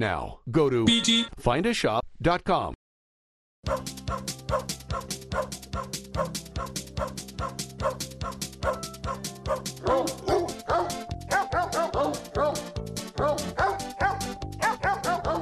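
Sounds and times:
speech: 0.0 - 2.8, 3.6 - 5.6
rhythmic musical backing: 0.9 - 1.3, 3.7 - 15.3
dog barking and yipping: 3.7 - 12.6, 13.2 - 15.3.

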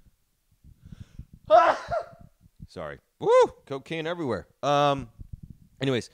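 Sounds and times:
short halting breaths: 0.7 - 2.4
speech: 2.8 - 5.2, 5.8 - 6.1.

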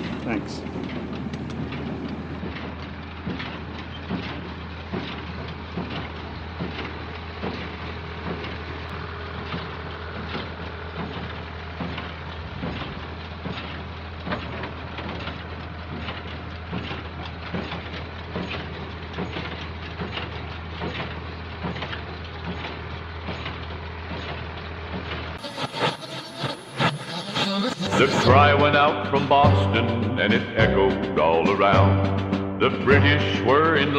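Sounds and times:
square baler running with clattering, droning and knocking: 0.0 - 33.9
speech: 0.3 - 1.0, 28.4 - 33.9.

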